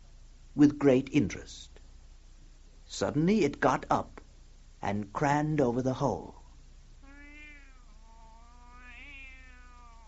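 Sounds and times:
faint steady hum: 0:00.0 - 0:10.0
speech: 0:00.6 - 0:01.7, 0:02.9 - 0:04.2, 0:04.8 - 0:06.4
cat meowing: 0:07.0 - 0:10.0.

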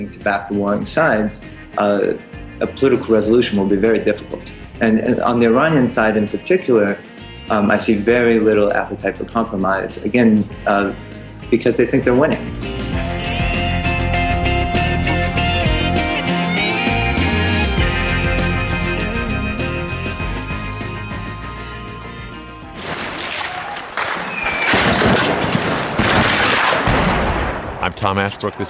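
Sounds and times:
speech: 0:00.0 - 0:12.7, 0:28.1 - 0:28.6
tonal musical passage: 0:13.1 - 0:22.9
gunfire as rebels seize a government checkpoint: 0:22.8 - 0:27.7.

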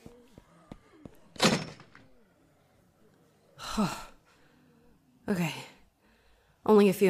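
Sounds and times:
faint breathy vocal sounds: 0:00.0 - 0:01.4, 0:02.0 - 0:06.6
door slamming shut with a heavy thud: 0:01.3 - 0:02.1
speech: 0:03.8 - 0:04.0, 0:05.3 - 0:05.6, 0:06.7 - 0:07.0.

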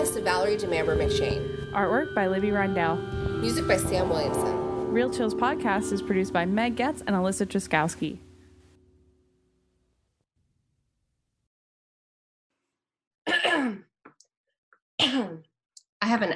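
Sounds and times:
speech: 0:00.1 - 0:08.2
allergy coughing: 0:13.3 - 0:13.9, 0:15.0 - 0:15.5
throat clearing: 0:13.3 - 0:13.9.

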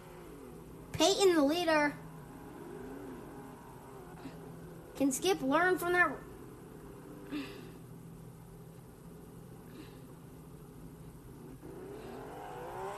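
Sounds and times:
racing car engines accelerating at a race start: 0:00.0 - 0:05.3, 0:11.2 - 0:12.9
speech: 0:01.0 - 0:02.0, 0:05.0 - 0:06.3, 0:07.3 - 0:07.6.

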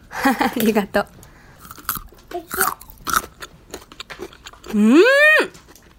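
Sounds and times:
speech: 0:00.2 - 0:01.2, 0:04.7 - 0:05.6
raw carrot stick crunching while chewing: 0:01.6 - 0:04.9.

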